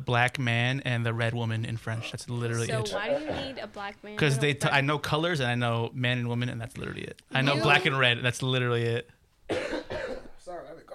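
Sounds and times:
speech: 0:00.0 - 0:09.8
harsh coughs: 0:02.9 - 0:03.6, 0:09.5 - 0:10.4.

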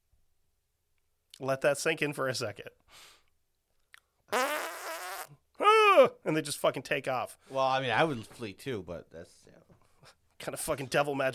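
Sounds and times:
speech: 0:01.4 - 0:03.2, 0:06.0 - 0:11.3
loud buzzing fart: 0:04.3 - 0:05.4.

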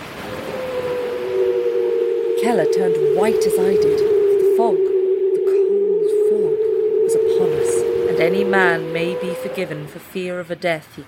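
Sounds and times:
ship's steam siren blaring through the fog: 0:00.0 - 0:10.2
speech: 0:02.4 - 0:04.8, 0:08.2 - 0:11.0.

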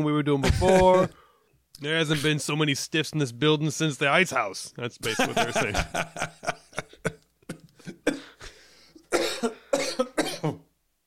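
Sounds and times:
speech: 0:00.0 - 0:01.2, 0:01.8 - 0:06.9
laughter: 0:05.0 - 0:08.0
person coughing: 0:07.8 - 0:10.6.

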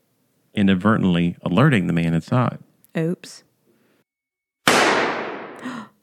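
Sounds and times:
speech: 0:00.6 - 0:03.5
pistol gunshot: 0:04.6 - 0:05.6.

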